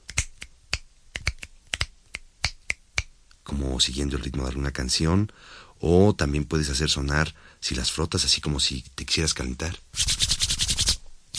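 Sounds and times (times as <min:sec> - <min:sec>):
crisp finger snaps: 0:00.0 - 0:03.1
speech: 0:03.5 - 0:10.3.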